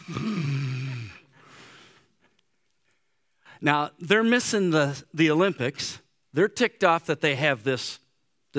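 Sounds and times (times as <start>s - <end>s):
person imitating snoring: 0.0s - 1.3s
breathy exhale: 0.0s - 2.1s
speech: 3.6s - 8.5s.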